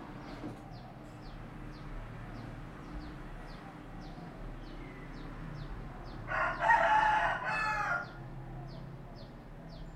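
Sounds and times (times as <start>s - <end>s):
rooster crowing: 6.3s - 8.2s.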